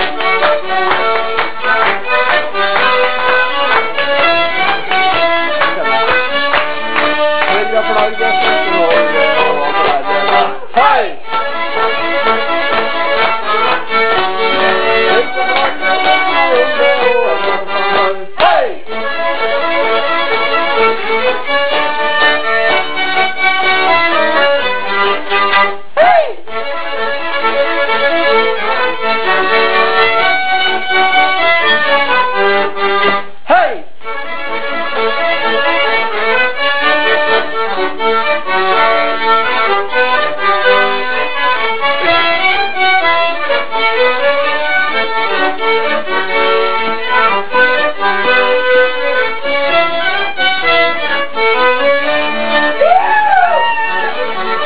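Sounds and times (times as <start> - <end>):
music at a PhD dinner: 0.0 - 54.6.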